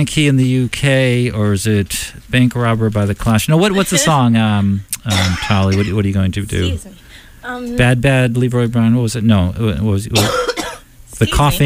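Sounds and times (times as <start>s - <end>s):
speech: 0.0s - 10.6s, 11.2s - 11.6s
singer coughing before a live acoustic song: 3.8s - 4.3s, 5.1s - 6.0s, 10.2s - 10.9s
singer clearing throat before a live acoustic song: 5.0s - 6.0s, 10.2s - 10.9s.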